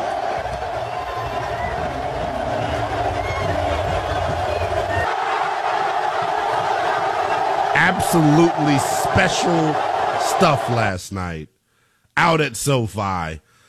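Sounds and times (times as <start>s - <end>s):
huge stadium crowd cheering: 0.0s - 11.4s
low rumble: 1.1s - 5.0s
laughter: 1.6s - 10.8s
speech: 7.9s - 11.6s, 12.2s - 13.5s.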